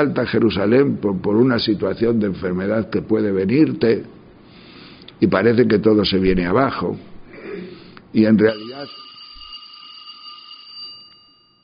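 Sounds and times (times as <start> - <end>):
speech: 0.0 - 4.2, 5.2 - 7.1, 8.1 - 9.0
bell ringing with a sustained electronic tone: 8.4 - 11.6.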